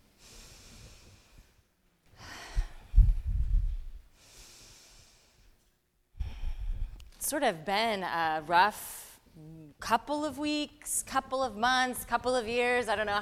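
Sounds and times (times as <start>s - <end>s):
deep breaths: 0.0s - 7.1s
speech: 7.3s - 13.1s.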